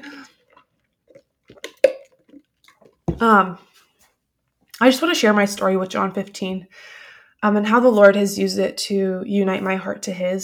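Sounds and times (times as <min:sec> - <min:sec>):
person swallowing water: 0:00.0 - 0:03.2
person sipping water: 0:00.0 - 0:04.0
speech: 0:03.2 - 0:03.7, 0:04.8 - 0:10.4.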